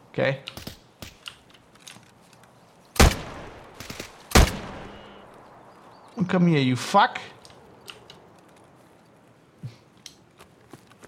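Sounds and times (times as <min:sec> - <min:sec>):
speech: 0:00.2 - 0:00.7, 0:06.2 - 0:07.4
video game gunfire shooting into bushes: 0:03.0 - 0:05.2.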